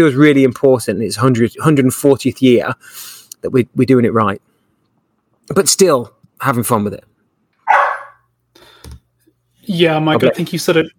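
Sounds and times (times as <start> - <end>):
speech: 0.0 - 4.5, 5.5 - 7.1, 9.7 - 10.9
dog barking: 7.6 - 8.3.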